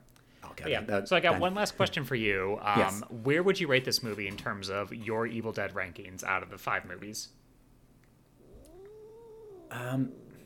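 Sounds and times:
speech: 0:00.6 - 0:07.4, 0:09.7 - 0:10.2
cat yowling: 0:08.4 - 0:09.9.

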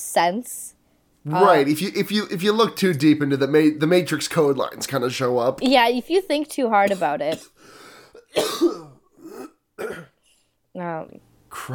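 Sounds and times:
speech: 0:00.0 - 0:08.8, 0:10.8 - 0:11.7
harsh cough: 0:06.9 - 0:10.2
throat clearing: 0:08.2 - 0:10.2.

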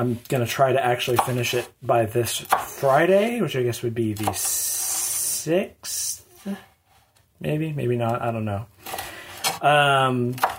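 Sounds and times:
speech: 0:00.0 - 0:06.7, 0:07.4 - 0:08.7, 0:09.6 - 0:10.5
knife chopping bell pepper on a cutting board: 0:02.4 - 0:03.0, 0:10.4 - 0:10.5.

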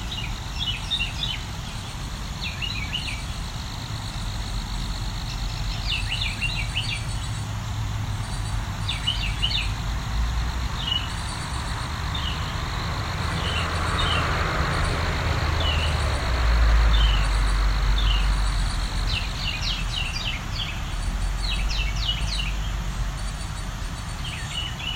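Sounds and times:
Carolina wren giving rolling chattering songs and calls: 0:00.0 - 0:24.9.

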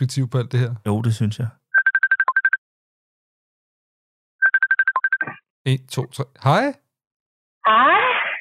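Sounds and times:
speech: 0:00.0 - 0:01.6, 0:05.6 - 0:06.8, 0:07.6 - 0:08.2
phone dialing tones: 0:01.8 - 0:02.6, 0:04.4 - 0:05.4.

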